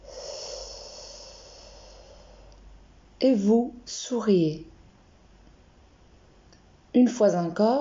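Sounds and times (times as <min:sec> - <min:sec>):
long soft breath during a guided relaxation exercise: 0:00.0 - 0:02.8
speech: 0:03.2 - 0:04.7, 0:07.0 - 0:07.7.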